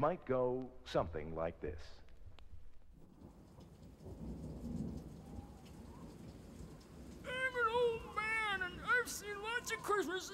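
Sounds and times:
speech: 0.0 - 2.0, 9.1 - 10.3
steady rain pouring: 3.0 - 10.3.

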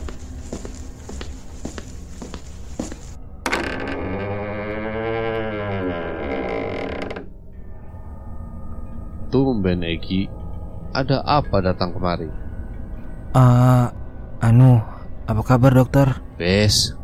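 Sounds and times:
residence door creaking open by itself: 3.4 - 7.4
speech: 9.6 - 10.4, 11.0 - 12.4, 13.3 - 17.0.

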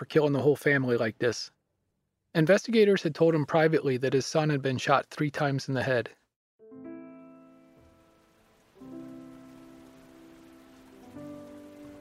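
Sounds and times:
speech: 0.0 - 1.6, 2.3 - 6.2
sustained musical chords: 6.6 - 12.0
rain falling during a burial at a cemetery outside Raritan: 7.5 - 12.0.

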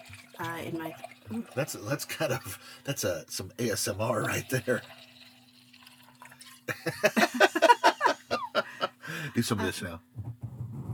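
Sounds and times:
wine being poured into a glass: 0.0 - 7.2
speech: 0.4 - 5.1, 6.8 - 7.5, 9.2 - 10.4
laughter: 6.7 - 9.8.

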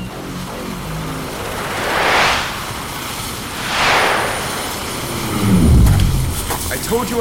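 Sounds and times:
airy whooshes of a flying hoverboard: 1.4 - 7.1
low chopping helicopter drone: 3.5 - 7.1.

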